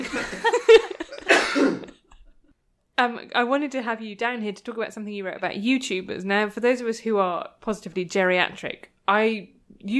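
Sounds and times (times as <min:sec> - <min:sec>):
laughter: 0:00.0 - 0:01.4
speech: 0:00.1 - 0:00.6, 0:03.0 - 0:09.9
man coughing: 0:01.0 - 0:02.1.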